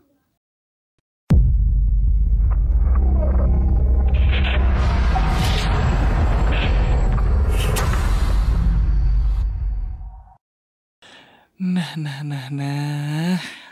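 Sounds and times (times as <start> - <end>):
booming hits in a podcast opening bumper: 1.3 - 10.1
deep rumbling bass in a cinematic podcast opening bumper: 1.3 - 10.3
speech: 12.0 - 13.6.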